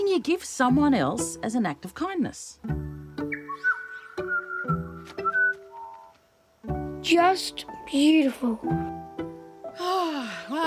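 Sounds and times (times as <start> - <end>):
speech: 0.2 - 3.0, 7.0 - 9.0, 9.8 - 10.6
bird chirping: 2.7 - 6.2.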